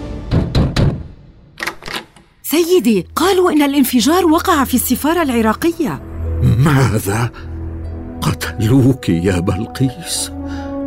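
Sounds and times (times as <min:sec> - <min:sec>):
rapid knocking on an office door: 0:00.2 - 0:01.2
speech: 0:02.5 - 0:07.5, 0:08.3 - 0:10.4.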